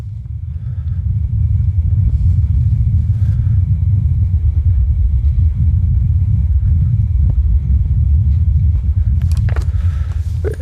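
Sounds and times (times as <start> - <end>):
heavy low-frequency rumble of wind on Mars recorded by a rover: 0.0 - 10.6.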